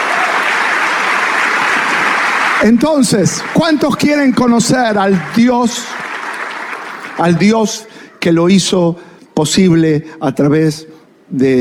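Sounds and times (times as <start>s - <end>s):
church congregation applauding during a worship service: 0.0s - 8.3s
speech: 2.6s - 6.0s, 7.2s - 11.5s.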